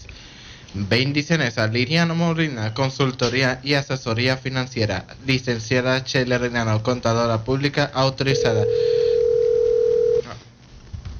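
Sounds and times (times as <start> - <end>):
low noise: 0.0 - 11.1
speech: 0.8 - 9.0
telephone tone for an incoming call to a radio show: 8.3 - 10.4.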